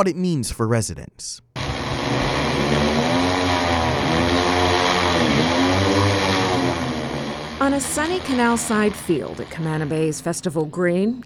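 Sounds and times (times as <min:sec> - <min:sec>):
speech: 0:00.0 - 0:01.5, 0:07.6 - 0:11.2
heavy lift drone propellers whirring: 0:01.6 - 0:10.5.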